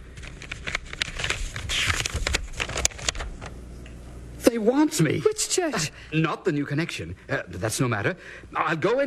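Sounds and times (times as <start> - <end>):
letter paper crackling and rustling as it is torn open and unfolded: 0.0 - 3.6
speech: 4.5 - 9.0.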